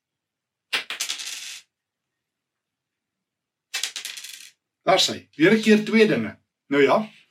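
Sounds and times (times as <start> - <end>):
heavy coins dropping with a metallic clatter: 0.8 - 1.6, 3.7 - 4.6
speech: 4.9 - 7.2.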